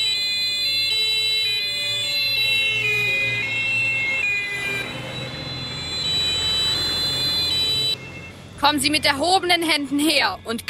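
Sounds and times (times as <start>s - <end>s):
low rumble of traffic: 0.0s - 10.6s
several police sirens wailing: 0.0s - 10.6s
speech: 8.6s - 10.6s.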